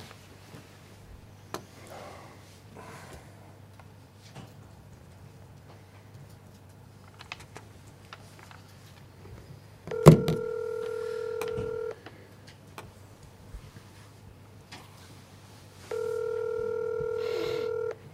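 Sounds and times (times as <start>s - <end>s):
long steady telephone keypad tones: 9.9s - 12.0s, 15.9s - 18.0s.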